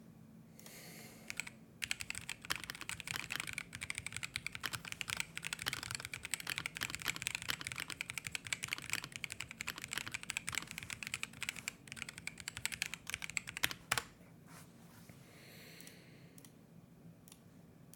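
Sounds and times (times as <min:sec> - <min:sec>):
computer keyboard typing: 0:01.3 - 0:14.1.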